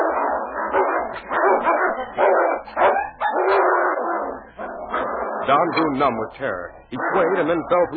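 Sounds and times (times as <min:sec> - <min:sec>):
dog and timber wolf yelps and barks: 0:00.0 - 0:05.6
dog and timber wolf snarling and growling while fighting beneath a tree in a forest: 0:00.0 - 0:06.2, 0:06.9 - 0:07.9
speech: 0:05.5 - 0:07.9.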